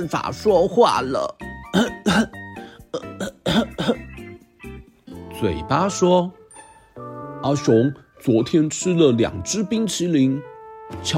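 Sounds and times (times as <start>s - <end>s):
speech: 0.0s - 2.4s, 5.4s - 6.4s, 7.4s - 11.1s
harsh voiced coughing from a sore swollen throat caused by a cold: 1.6s - 4.2s.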